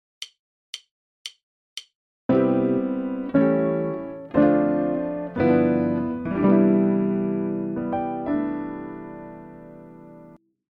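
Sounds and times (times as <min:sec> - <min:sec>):
guitar: 0:02.3 - 0:10.4.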